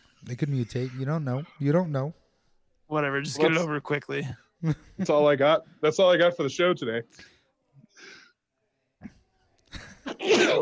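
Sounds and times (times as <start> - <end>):
speech: 0.2 - 2.2, 2.9 - 7.3, 9.7 - 10.6
person sneezing: 10.1 - 10.6.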